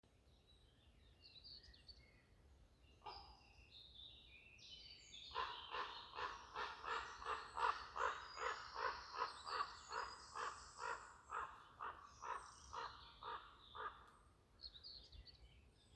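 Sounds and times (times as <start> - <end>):
Corvus crow calling: 5.4 - 14.1.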